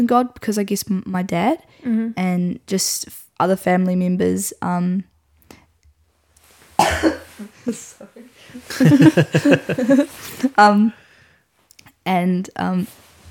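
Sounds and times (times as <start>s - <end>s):
speech: 0.0s - 5.1s, 6.9s - 11.0s, 12.0s - 13.0s
person with a COVID cough coughing: 6.8s - 7.8s
laughter: 8.5s - 10.5s.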